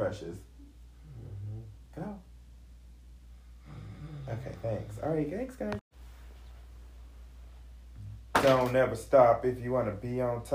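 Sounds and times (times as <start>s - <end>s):
speech: 0.0s - 0.5s, 4.3s - 5.8s, 8.4s - 10.5s
person snoring: 1.0s - 1.8s, 3.6s - 5.1s.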